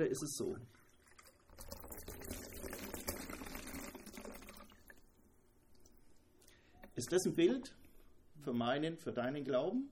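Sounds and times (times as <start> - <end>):
speech: 0.0 - 0.9, 7.0 - 7.8, 8.4 - 9.8
liquid poured into a glass and overflowing: 0.6 - 6.0
liquid dripping: 0.6 - 7.0.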